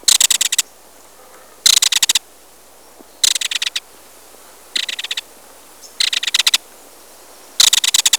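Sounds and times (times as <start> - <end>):
kingfisher calls: 0.0 - 2.3, 3.2 - 3.9, 4.5 - 6.7, 7.6 - 8.1.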